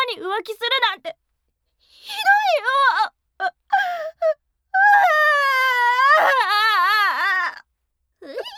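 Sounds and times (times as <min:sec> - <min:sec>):
speech: 0:00.2 - 0:01.2
woman crying: 0:03.4 - 0:07.5.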